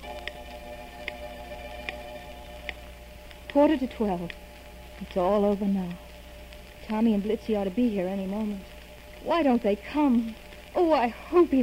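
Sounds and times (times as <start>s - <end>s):
clock ticking: 0.0s - 4.4s
low constant hum: 0.0s - 11.6s
speech: 3.6s - 4.4s, 5.0s - 6.0s, 6.9s - 11.6s.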